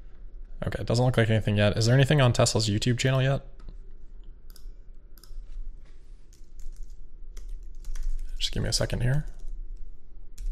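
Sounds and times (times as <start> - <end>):
low steady hum: 0.0 - 10.5
speech: 0.6 - 3.5, 8.6 - 9.4
typing on a computer keyboard: 4.5 - 5.5, 6.3 - 8.3.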